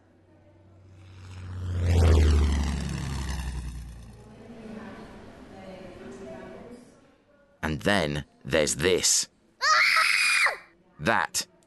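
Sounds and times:
P-51 Mustang fighter plane propeller engine flying overhead over Suffolk: 0:00.4 - 0:05.3
speech: 0:07.8 - 0:09.8, 0:11.0 - 0:11.5
nine-year-old child screaming: 0:09.6 - 0:10.7.

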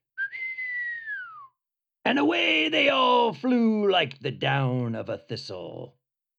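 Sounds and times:
clear whistle given to a sleigh team: 0:00.1 - 0:01.6
speech: 0:02.1 - 0:06.0.

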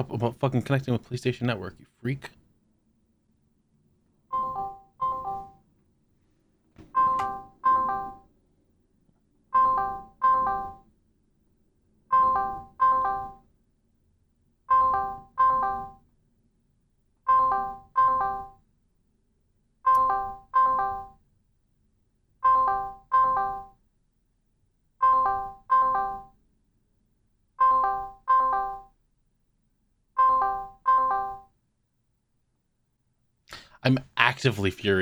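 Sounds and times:
speech: 0:00.0 - 0:02.4, 0:33.9 - 0:34.9
call ringtone chiming on a phone: 0:07.0 - 0:08.3, 0:09.6 - 0:10.8, 0:12.1 - 0:13.4, 0:14.7 - 0:16.0, 0:17.3 - 0:18.6, 0:19.9 - 0:21.2, 0:22.4 - 0:23.8, 0:25.0 - 0:26.3, 0:27.6 - 0:28.9, 0:30.2 - 0:31.5.

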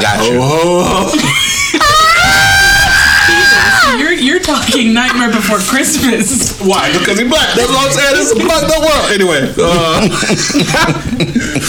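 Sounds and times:
speech: 0:00.0 - 0:01.2, 0:04.5 - 0:11.6
laughter: 0:00.0 - 0:11.6
person imitating little kids screaming: 0:01.8 - 0:04.0.

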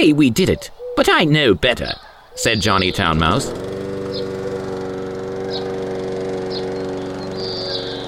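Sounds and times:
speech: 0:00.0 - 0:04.3
faint bird chirps: 0:00.0 - 0:04.8, 0:05.4 - 0:05.9, 0:06.5 - 0:08.0
lawnmower engine droning: 0:02.4 - 0:08.0.

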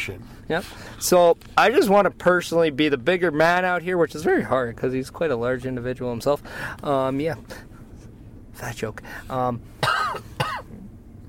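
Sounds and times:
speech: 0:00.0 - 0:07.7, 0:08.6 - 0:10.4
person coughing throatily: 0:09.8 - 0:10.8.

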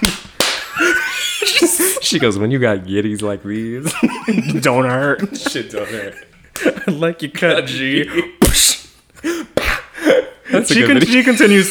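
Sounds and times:
hand slapping a woman's breast: 0:00.0 - 0:00.8, 0:08.4 - 0:08.7, 0:09.6 - 0:09.9
laughter: 0:00.6 - 0:02.4, 0:03.7 - 0:08.4
speech: 0:02.1 - 0:11.6.

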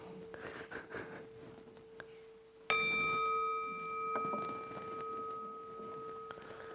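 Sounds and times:
faint steady hum: 0:00.0 - 0:06.7
single gong strike at the end of a meditation: 0:02.7 - 0:06.7.

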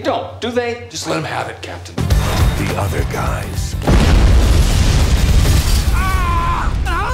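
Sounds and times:
speech: 0:00.0 - 0:04.7
crackling debris noise: 0:03.8 - 0:07.1
loud rumbling explosion in an action film: 0:03.8 - 0:07.1.

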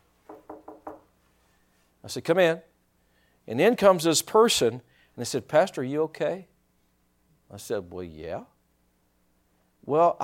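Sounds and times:
knocking on a wooden office door: 0:00.3 - 0:01.1
speech: 0:02.1 - 0:02.7, 0:03.5 - 0:06.5, 0:07.5 - 0:08.5, 0:09.8 - 0:10.2.

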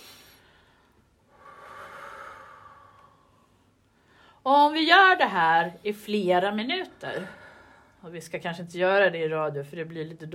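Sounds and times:
slow deep breathing in and out: 0:00.0 - 0:04.4, 0:07.2 - 0:08.0
speech: 0:04.4 - 0:07.4, 0:08.0 - 0:10.3.

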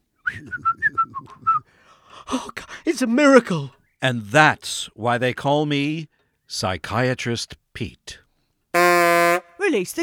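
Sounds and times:
person whistling a quick wavering tune: 0:00.2 - 0:01.7
speech: 0:00.4 - 0:00.8, 0:02.3 - 0:08.2, 0:09.7 - 0:10.0.

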